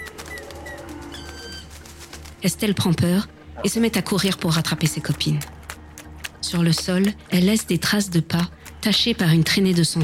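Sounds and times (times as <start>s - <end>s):
bird flying up from a bush: 0.0s - 2.6s
speech: 2.4s - 5.6s, 6.5s - 10.0s.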